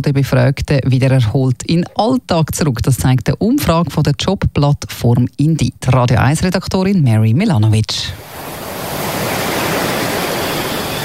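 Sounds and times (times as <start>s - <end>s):
speech: 0.0s - 8.6s
ocean surf washing onto a beach: 8.2s - 11.0s.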